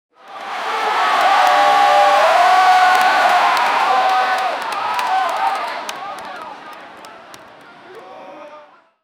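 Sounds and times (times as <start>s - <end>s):
crowd: 0.1s - 9.0s.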